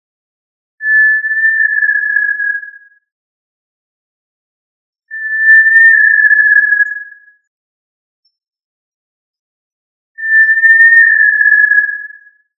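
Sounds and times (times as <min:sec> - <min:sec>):
tinamou whistled call: 0:00.8 - 0:02.8, 0:05.1 - 0:07.2, 0:10.2 - 0:12.3.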